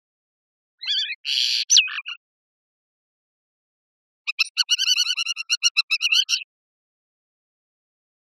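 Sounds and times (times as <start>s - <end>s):
capped wheatear calling: 0.8s - 2.2s, 4.3s - 6.5s.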